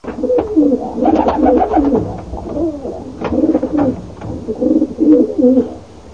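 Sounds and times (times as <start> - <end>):
pigeon birdsound: 0.0 - 6.1.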